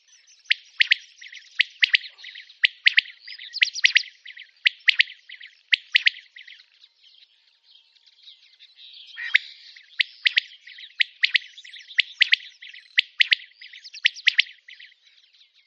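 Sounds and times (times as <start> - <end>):
common quail calling: 0.5 - 6.6, 9.2 - 15.0.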